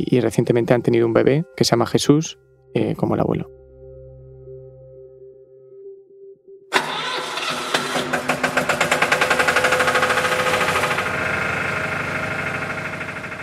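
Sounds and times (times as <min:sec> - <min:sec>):
speech: 0:00.0 - 0:03.6
electric generator engine in a shack cranking and running: 0:06.8 - 0:13.4.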